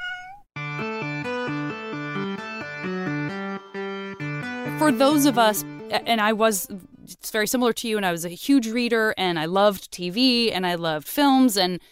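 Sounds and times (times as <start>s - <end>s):
person imitating a cat meowing: 0.0s - 0.4s
bright chord-heavy music: 0.6s - 6.9s
speech: 4.8s - 11.9s.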